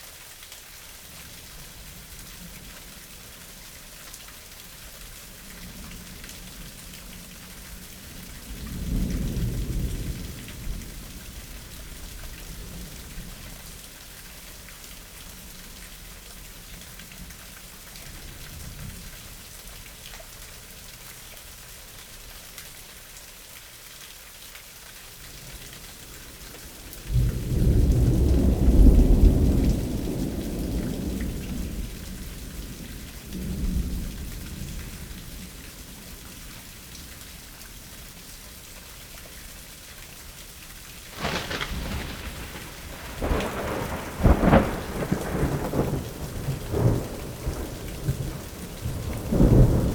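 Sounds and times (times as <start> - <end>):
spring thunderstorm in suburbs: 5.6 - 13.8, 26.6 - 36.2, 41.0 - 49.9.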